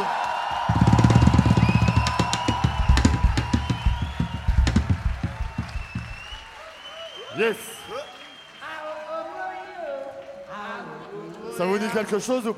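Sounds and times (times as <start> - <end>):
faint cheering: 0.0 - 8.8
crowd clapping: 0.0 - 11.1
speech: 7.4 - 7.7, 11.7 - 12.5.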